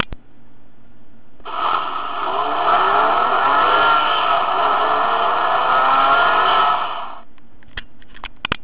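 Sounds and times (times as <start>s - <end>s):
Astra XS engine accelerating on a Bobby Car sound steering wheel toy: 1.5s - 7.3s.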